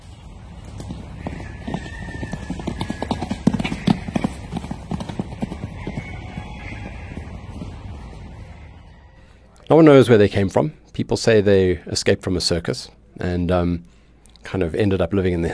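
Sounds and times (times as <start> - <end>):
wild horse hooves clip-clopping over hard ground: 0.0 - 8.9
speech: 9.7 - 15.5.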